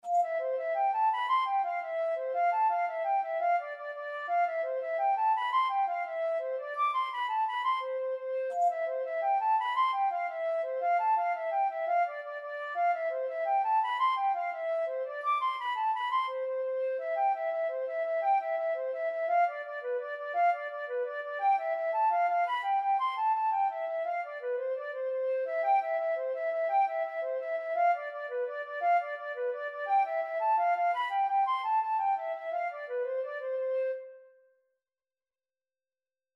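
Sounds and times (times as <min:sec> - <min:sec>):
absent minded flute playing: 0:00.0 - 0:34.5.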